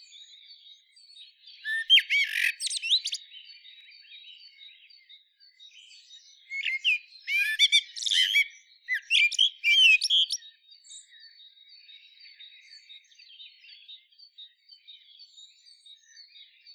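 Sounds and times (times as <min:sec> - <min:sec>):
common blackbird Turdus merula twittering and chirping: 0:01.5 - 0:03.4, 0:05.8 - 0:11.2.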